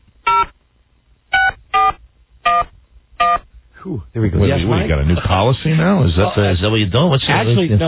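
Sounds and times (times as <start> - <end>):
touch-tone beeps of a telephone being dialed: 1.4 - 3.4
speech: 3.8 - 7.8.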